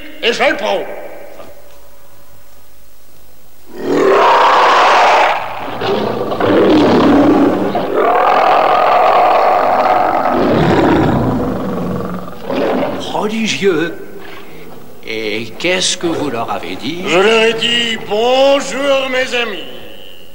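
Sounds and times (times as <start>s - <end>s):
speech: 0.2s - 1.0s, 13.4s - 14.0s, 15.6s - 19.7s
lion roaring in long rough growling bursts: 3.7s - 17.9s.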